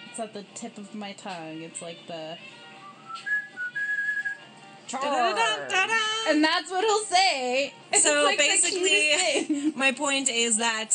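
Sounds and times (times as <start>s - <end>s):
speech: 0.2s - 2.6s, 4.9s - 10.9s
person whistling a short bright cavalry charge tune: 2.8s - 4.4s.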